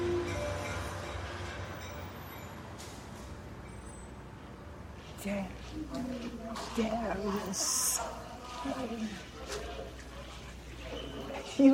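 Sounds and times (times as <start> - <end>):
train pulling into a station: 0.0 - 5.9
speech: 5.2 - 9.6, 11.6 - 11.7.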